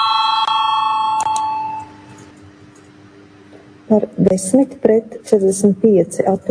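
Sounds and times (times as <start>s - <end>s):
electric parliamentary voting bell ringing: 0.0s - 2.2s
speech: 3.9s - 6.4s.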